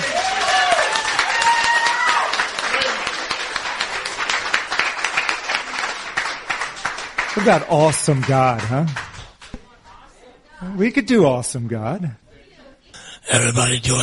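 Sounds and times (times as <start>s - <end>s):
audience cheering and clapping: 0.0s - 9.1s
speech: 7.4s - 9.1s, 10.7s - 12.2s, 13.3s - 14.0s.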